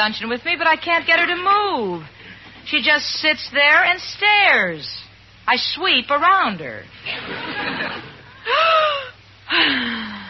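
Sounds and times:
speech: 0:00.0 - 0:08.8
laughter: 0:07.0 - 0:09.0
deep breathing exercise inhales and exhales with a strained moaning tone: 0:08.4 - 0:10.2.

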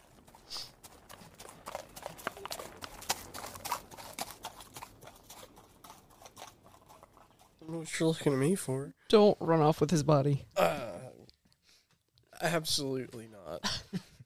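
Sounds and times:
horse hooves clip-clopping as a rider rides off: 0:00.0 - 0:08.7
speech: 0:07.8 - 0:10.9, 0:12.5 - 0:13.7.

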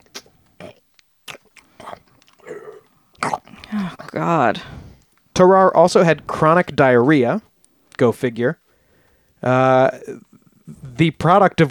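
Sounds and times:
voice imitating wet chewing and sticky swallowing: 0:00.0 - 0:05.3, 0:09.9 - 0:10.9
speech: 0:03.8 - 0:04.8, 0:05.4 - 0:08.6, 0:09.4 - 0:10.3, 0:11.0 - 0:11.6.

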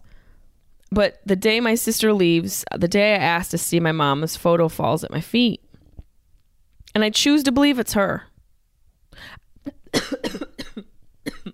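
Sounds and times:
speech: 0:00.9 - 0:05.6, 0:06.9 - 0:08.3
person coughing harshly from choking: 0:09.9 - 0:11.5.

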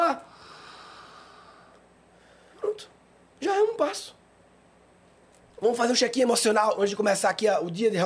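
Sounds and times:
person breathing in deeply: 0:00.3 - 0:02.6
speech: 0:02.8 - 0:04.2, 0:05.6 - 0:08.0.

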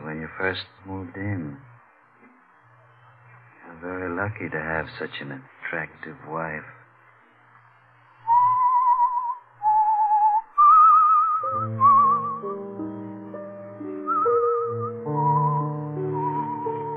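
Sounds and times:
speech: 0:00.4 - 0:01.7, 0:03.7 - 0:06.8
person whistling a slow wavering melody with vibrato: 0:08.2 - 0:12.5, 0:14.0 - 0:16.9
soft instrumental accompaniment: 0:11.4 - 0:16.9.

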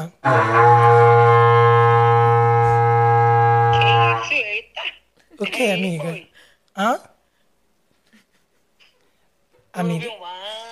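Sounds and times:
speech: 0:00.0 - 0:00.8, 0:05.4 - 0:07.1, 0:09.8 - 0:10.6
berrante cattle horn blast: 0:00.2 - 0:04.3.

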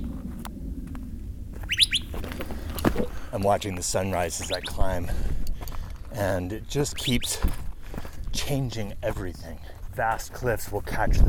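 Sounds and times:
steady low rumble of outdoor ambience: 0:00.0 - 0:11.2
birds chirping at dawn in a desert with saguaro cacti: 0:01.6 - 0:05.6, 0:06.7 - 0:07.5
speech: 0:03.3 - 0:05.4, 0:06.2 - 0:07.6, 0:08.4 - 0:11.2.

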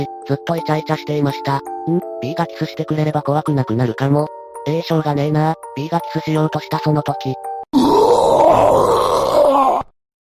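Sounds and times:
speech: 0:00.0 - 0:09.2
person retching loudly in an old mountain tunnel: 0:07.7 - 0:09.9.

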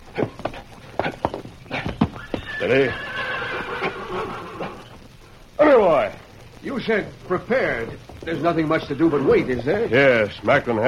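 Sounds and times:
horse whinnying: 0:01.0 - 0:05.1
speech: 0:02.6 - 0:03.1, 0:05.7 - 0:10.8.

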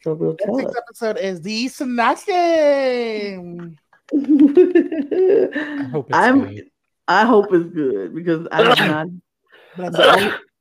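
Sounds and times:
speech: 0:00.0 - 0:09.2, 0:09.8 - 0:10.5
laughter: 0:04.1 - 0:06.1
person sneezing: 0:08.6 - 0:09.0, 0:09.9 - 0:10.5.

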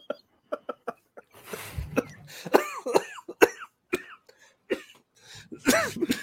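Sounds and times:
prolonged coughing fit with sharp raspy coughs: 0:01.8 - 0:06.2.

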